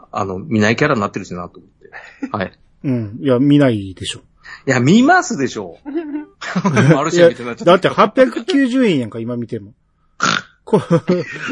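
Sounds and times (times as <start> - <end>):
speech: 0.1 - 11.4
laughter: 5.9 - 8.6, 10.7 - 11.4
loud nasal snort: 10.2 - 10.6.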